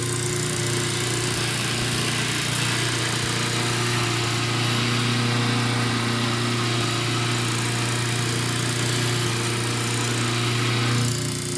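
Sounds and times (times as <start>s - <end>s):
machinery moving in a machine room: 0.1s - 11.5s.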